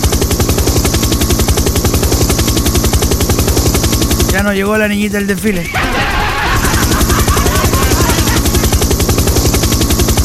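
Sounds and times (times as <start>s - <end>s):
helicopter passing overhead with rotor blades chopping: 0.0s - 10.2s
speech: 4.4s - 6.0s
laughter: 5.6s - 9.0s.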